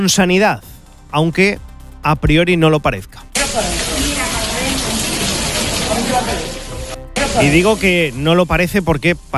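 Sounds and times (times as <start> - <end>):
speech: 0.0 - 3.9, 7.4 - 9.3
water pouring and splashing inside a flooded hospital: 3.4 - 9.3.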